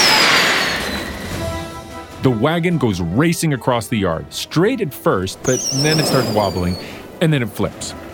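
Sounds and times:
fireworks spewing sparks with a rushing hiss: 0.0 - 1.7, 5.4 - 7.1
thin high firework whistle sliding downward: 0.0 - 1.8, 5.4 - 6.9
speech: 2.2 - 8.0.

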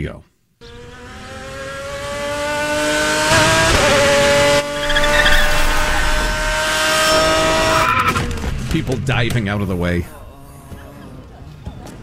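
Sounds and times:
speech: 0.0 - 0.3, 8.7 - 10.2
supercharged race car engine roaring: 0.6 - 11.2
supercharged race car tire squeal skidding into a parking lot: 4.6 - 6.4, 7.0 - 8.3.

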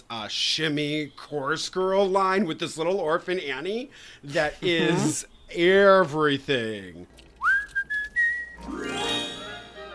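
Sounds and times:
speech: 0.1 - 7.2, 8.6 - 9.3
person whistling a tune: 7.4 - 8.6
music: 8.4 - 9.9.

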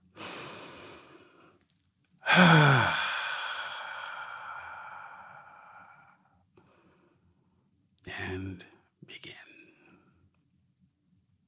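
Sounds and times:
slow deep breath with sighing exhale: 0.1 - 1.6, 2.2 - 7.2.

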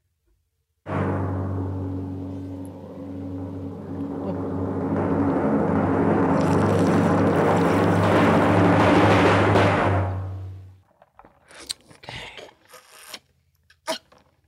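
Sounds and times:
loud dense rolling rumble: 0.9 - 10.8
short wet slurping sounds: 11.5 - 13.3.

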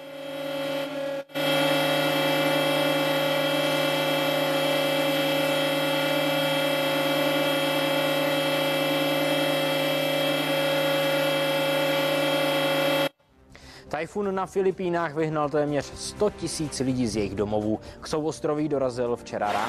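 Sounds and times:
siren wail during memorial silence: 0.0 - 13.1
speech: 14.0 - 19.6.

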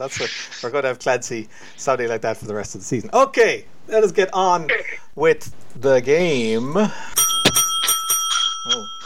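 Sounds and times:
short burst of voice: 0.0 - 0.8
speech: 0.0 - 7.2
loud bright bell ringing: 7.2 - 9.0.

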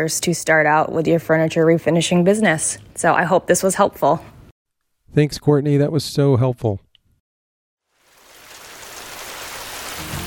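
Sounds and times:
speech: 0.0 - 4.4, 5.1 - 6.8
steady rain falling: 7.9 - 10.2.

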